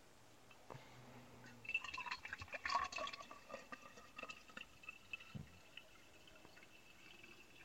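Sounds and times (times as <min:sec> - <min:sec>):
water pouring into a canteen: 0:01.6 - 0:07.6.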